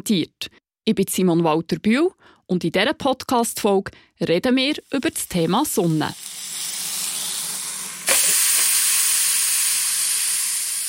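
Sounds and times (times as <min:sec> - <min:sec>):
speech: 0:00.0 - 0:06.7
sausage sizzling on a grill: 0:04.8 - 0:10.8.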